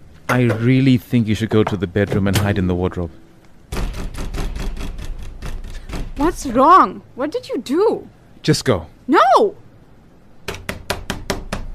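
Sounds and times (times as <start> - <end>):
speech: 0.3 - 3.2, 6.4 - 9.6
knocking on a door: 3.7 - 6.4, 10.5 - 11.7.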